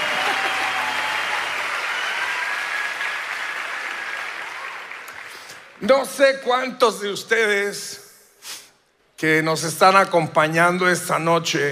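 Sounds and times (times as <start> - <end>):
audience applause: 0.0 - 5.8
speech: 5.8 - 8.6, 9.2 - 11.7.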